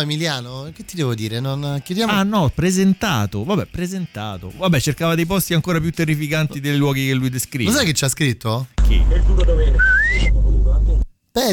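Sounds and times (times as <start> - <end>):
speech: 0.0 - 11.5
low rumbling background: 8.8 - 11.1
person whistling a rising note: 9.8 - 10.4.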